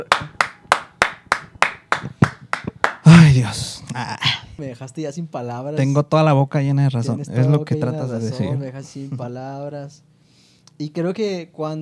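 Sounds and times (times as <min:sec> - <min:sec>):
hands clapping: 0:00.0 - 0:03.3
speech: 0:03.4 - 0:10.1, 0:10.8 - 0:11.8.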